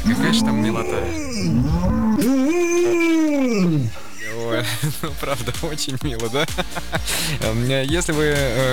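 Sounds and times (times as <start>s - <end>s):
retriever dog making a mooing sound: 0.0s - 4.0s
speech: 0.1s - 3.0s, 4.6s - 8.7s
laughter: 2.2s - 7.8s.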